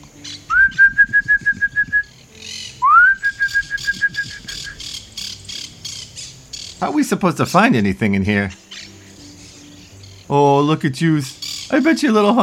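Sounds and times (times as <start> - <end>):
person whistling bird call imitations: 0.2 - 5.0
speech: 6.8 - 8.6, 10.3 - 12.4.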